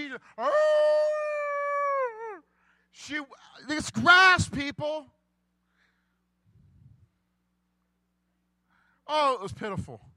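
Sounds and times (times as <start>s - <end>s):
speech: 0.2s - 0.8s, 3.1s - 5.2s, 9.1s - 10.1s
person imitating a dog howl: 0.4s - 2.4s.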